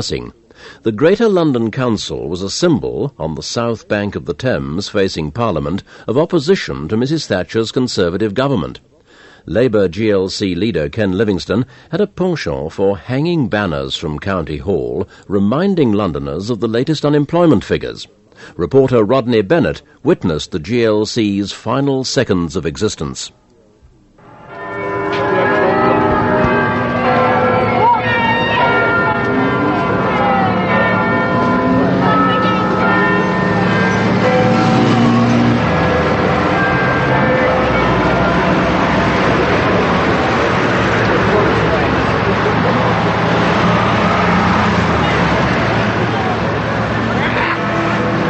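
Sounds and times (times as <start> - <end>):
speech: 0.0 - 23.4
large clock bell tolling midnight outdoors: 24.2 - 48.2
passing traffic: 24.2 - 48.2
crowd murmur: 24.8 - 48.2.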